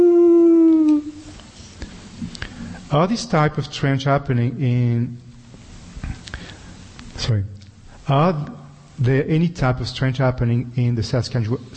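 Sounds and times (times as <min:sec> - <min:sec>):
howling: 0:00.0 - 0:01.2
speech: 0:02.9 - 0:05.2, 0:07.2 - 0:11.7.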